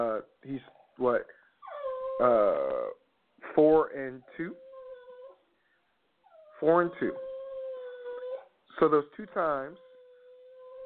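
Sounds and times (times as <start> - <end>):
speech: 0.0 - 1.3, 9.4 - 9.9
dog whimpering and whining: 1.6 - 3.0, 4.2 - 5.5, 6.2 - 8.6, 9.6 - 10.8.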